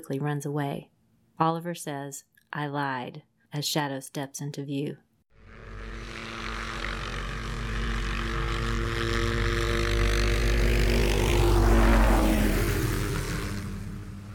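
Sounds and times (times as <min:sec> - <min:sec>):
speech: 0:00.0 - 0:05.1
FBI helicopter rotor and engine drone flying in to land: 0:05.4 - 0:14.3.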